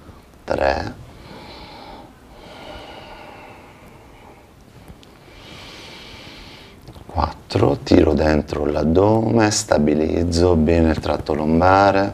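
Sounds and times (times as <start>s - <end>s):
speech: 0.5s - 1.0s, 7.5s - 12.1s
soft breathing in and out during an exercise routine: 1.0s - 7.1s.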